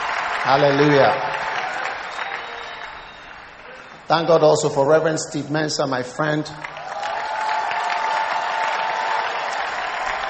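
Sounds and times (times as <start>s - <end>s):
crowd applauding: 0.0s - 4.3s, 6.5s - 10.2s
speech: 0.4s - 1.3s, 4.1s - 6.7s.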